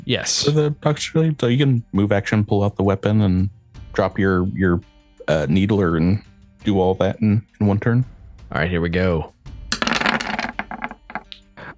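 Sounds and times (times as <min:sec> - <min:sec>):
speech: 0:00.1 - 0:09.4
dice rolled across a hard surface for an attack in a game: 0:09.7 - 0:11.3.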